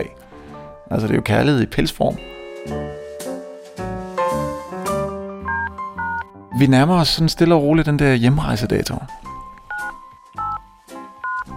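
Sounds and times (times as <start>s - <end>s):
speech: 0.9s - 2.8s, 6.6s - 9.2s
telephone keypad tones: 5.4s - 6.3s, 9.7s - 10.6s, 11.2s - 11.5s.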